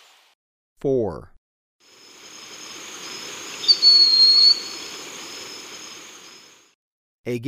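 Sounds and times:
speech: 0:00.8 - 0:01.3, 0:07.2 - 0:07.4
background hiss: 0:01.9 - 0:06.7
Broad-winged hawk whistle in Ecuador: 0:03.6 - 0:04.9.

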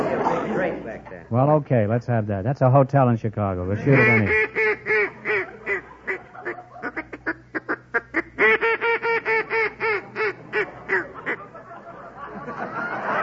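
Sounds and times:
laughter: 0:00.0 - 0:01.2, 0:03.6 - 0:07.4, 0:08.7 - 0:13.2
speech: 0:00.7 - 0:04.6
duck call blown imitating duck quacks: 0:03.8 - 0:11.4.

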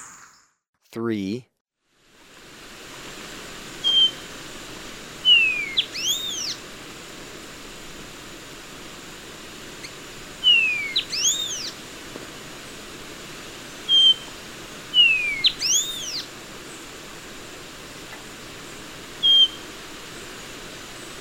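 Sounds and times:
speech: 0:00.9 - 0:01.5
faint hiss: 0:02.0 - 0:21.1
Bronze-green euphonia whistled calls in Ecuador: 0:03.8 - 0:04.2, 0:05.2 - 0:06.6, 0:09.8 - 0:11.8, 0:13.9 - 0:14.3, 0:14.9 - 0:16.3, 0:19.2 - 0:19.6.

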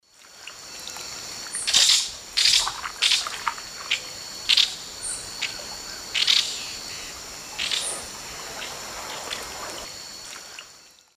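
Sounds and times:
Chloroceryle amazona flight calls in South American Eastern Lowlands: 0:01.7 - 0:09.9.

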